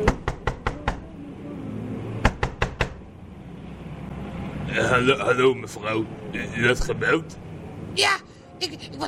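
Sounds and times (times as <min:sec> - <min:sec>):
knocking on a window: 0:00.0 - 0:01.0, 0:02.2 - 0:03.0
low hum: 0:00.0 - 0:09.0
speech: 0:04.7 - 0:09.0.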